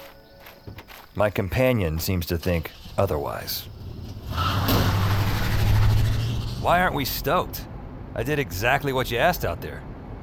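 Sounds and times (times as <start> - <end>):
broadband road noise: 0.0 - 10.2
speech: 0.7 - 4.4, 6.6 - 9.9
car engine starting and revving: 2.6 - 7.2.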